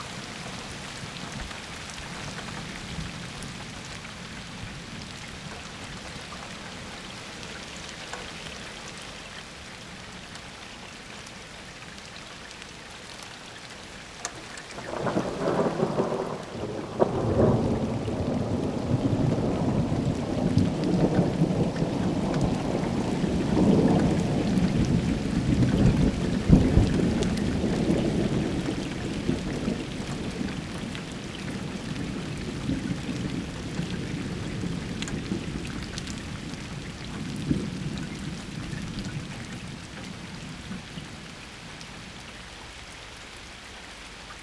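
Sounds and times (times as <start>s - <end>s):
summer storm: 14.8s - 41.3s.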